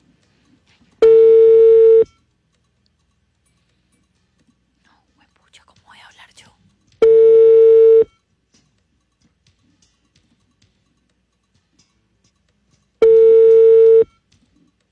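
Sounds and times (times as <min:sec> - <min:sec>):
long steady telephone tones on a call to a number in Bogotá: 0:01.0 - 0:02.1, 0:07.0 - 0:08.1, 0:13.0 - 0:14.1.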